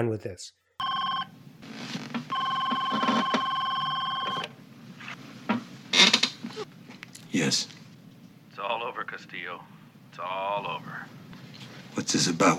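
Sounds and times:
speech: 0:00.0 - 0:00.6, 0:07.3 - 0:07.8, 0:08.6 - 0:11.2, 0:12.0 - 0:12.5
telephone ringing with bright warbling electronic tone: 0:00.8 - 0:01.4, 0:02.3 - 0:04.6.

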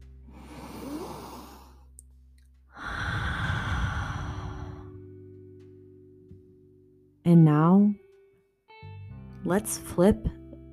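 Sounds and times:
person taking deep breaths during a guided meditation: 0:00.2 - 0:01.9, 0:02.7 - 0:05.0
speech: 0:07.3 - 0:08.0, 0:09.5 - 0:10.4.

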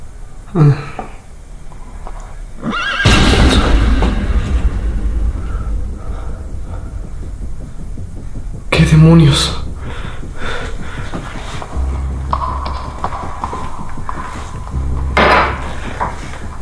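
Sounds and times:
speech: 0:00.5 - 0:01.0, 0:09.1 - 0:09.6
broadband rumbling noise: 0:01.2 - 0:16.6
horse whinnying: 0:02.6 - 0:03.1.

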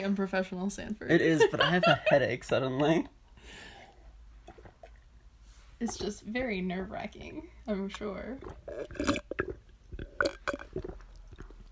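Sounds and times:
speech: 0:00.0 - 0:03.7, 0:05.8 - 0:09.6
person gulping water: 0:03.7 - 0:05.3, 0:08.2 - 0:11.7.

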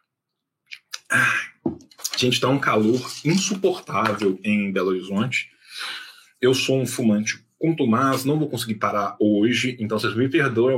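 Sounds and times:
wet mouth clicks: 0:00.7 - 0:01.1
speech: 0:01.1 - 0:01.5, 0:02.2 - 0:10.7.

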